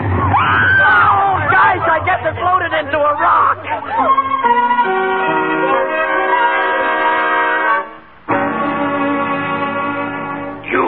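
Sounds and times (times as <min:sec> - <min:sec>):
rumble of a moving train: 0:00.0 - 0:10.8
train horn blaring: 0:03.5 - 0:10.6.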